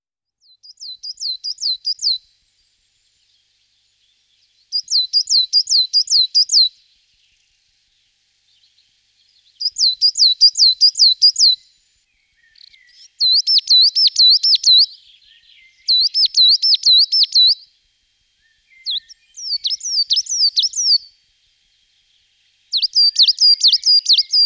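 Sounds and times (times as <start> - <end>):
coal tit Periparus ater calling: 0.6 - 2.2, 4.7 - 6.7, 9.6 - 11.6, 12.6 - 15.0, 15.7 - 17.6, 18.6 - 21.1, 22.7 - 24.4.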